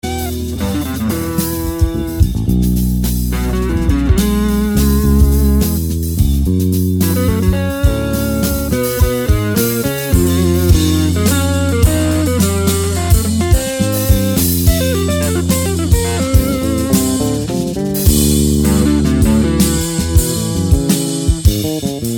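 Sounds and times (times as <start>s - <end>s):
guitar melody: 0.0s - 22.1s.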